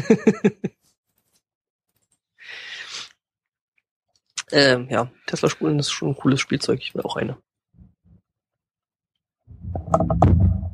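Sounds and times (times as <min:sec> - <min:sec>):
laughter: 0:00.0 - 0:00.7
speech: 0:00.1 - 0:00.7, 0:04.5 - 0:07.5
handling noise from a microphone stand being screwed: 0:09.5 - 0:10.7
quick knocks and clicks from screwing onto a microphone stand: 0:09.5 - 0:10.7.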